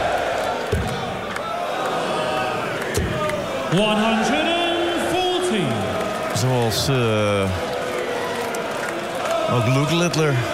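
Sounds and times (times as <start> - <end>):
large darts crowd jeering and booing a player: 0.0 - 10.5
speech: 3.7 - 4.4, 6.4 - 7.7, 9.5 - 10.5.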